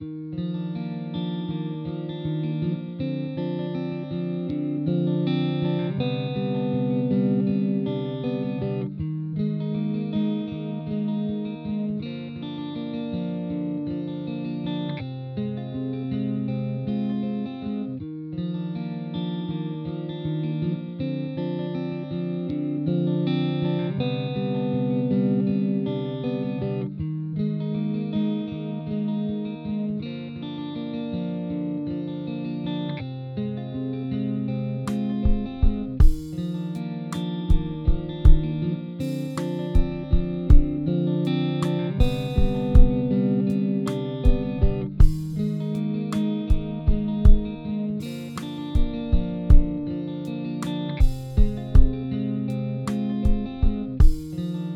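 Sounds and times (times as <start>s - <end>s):
guitar: 0.0s - 54.7s
drums: 34.9s - 40.8s, 41.6s - 43.0s, 43.9s - 49.8s, 50.6s - 52.0s, 52.9s - 54.4s.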